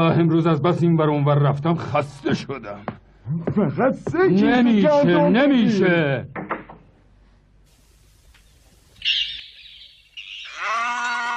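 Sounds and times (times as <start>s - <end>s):
speech: 0.0s - 6.4s
calf mooing in a barn: 10.4s - 11.3s.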